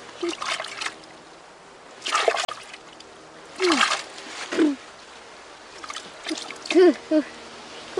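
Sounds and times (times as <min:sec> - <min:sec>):
lake water splashing as a grandfather washes a girl's face: 0:00.0 - 0:01.1, 0:01.9 - 0:03.0, 0:03.6 - 0:04.8, 0:05.7 - 0:06.9.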